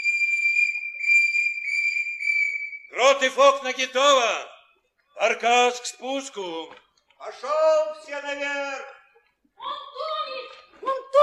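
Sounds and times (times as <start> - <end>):
boatswain's whistle piping all hands on deck aboard ship: 0.0 - 3.0
speech: 3.0 - 4.5, 5.2 - 9.0.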